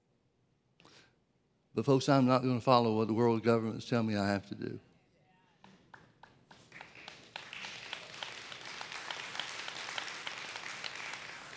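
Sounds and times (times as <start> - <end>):
speech: 1.8 - 4.9
audience applauding: 5.7 - 11.5.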